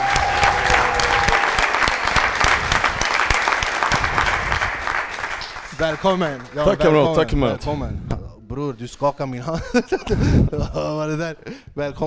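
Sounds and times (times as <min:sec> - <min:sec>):
large audience applauding an introduced guest: 0:00.0 - 0:07.2
speech: 0:05.8 - 0:12.0
laughter: 0:09.5 - 0:11.1.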